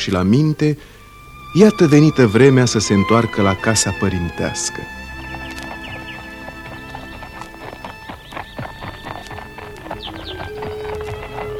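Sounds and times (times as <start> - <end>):
speech: 0.0 - 5.0
creaks: 0.9 - 11.5
horse whinnies: 0.9 - 11.5
horses trotting with hooves clip-clopping: 1.0 - 11.5.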